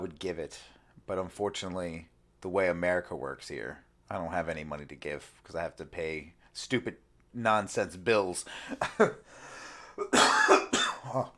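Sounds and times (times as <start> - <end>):
speech: 0.1 - 9.4, 10.0 - 11.3
person coughing with a raspy throat-clearing quality: 10.0 - 11.3.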